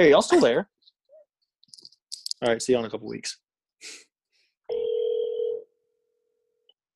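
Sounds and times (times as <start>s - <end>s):
speech: 0.0s - 0.7s, 2.4s - 4.1s
electronic ringback tone of a phone call over a speakerphone: 4.7s - 5.7s.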